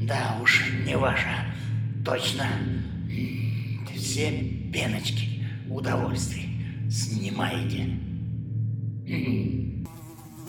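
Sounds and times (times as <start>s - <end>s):
speech: 0.1s - 8.1s, 9.1s - 9.8s
fly buzzing in flight around a sleeping person: 9.9s - 10.4s.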